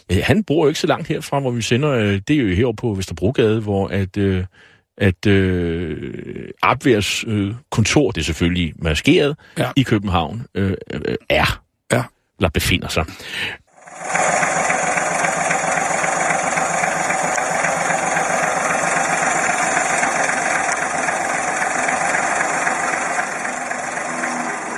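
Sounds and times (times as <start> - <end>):
speech: 0.0 - 14.6
1939 Opel Kapitän vintage car engine idling: 13.7 - 24.7.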